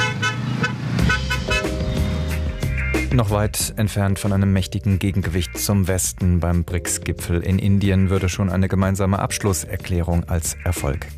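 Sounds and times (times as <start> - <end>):
car horns honking in chaotic summit traffic in India: 0.0 - 2.2
busy road noise rumble: 0.0 - 3.6
speech: 3.2 - 11.1.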